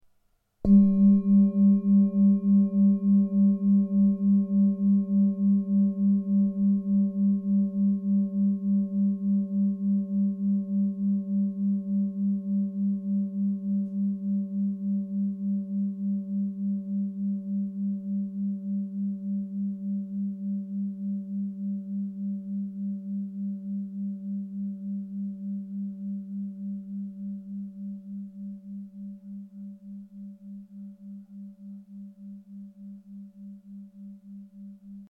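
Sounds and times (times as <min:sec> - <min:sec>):
18cm singing bowl tone: 0:00.6 - 0:35.0.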